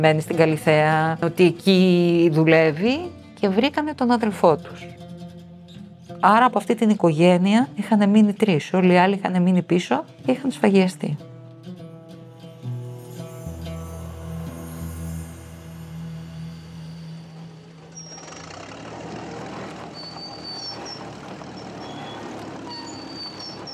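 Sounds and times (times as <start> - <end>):
speech: 0.0 - 5.0, 6.2 - 11.3
heavy truck diesel engine rumbling: 0.0 - 11.1, 12.8 - 23.7
truck air brakes hissing with faint high squeals: 15.5 - 23.7.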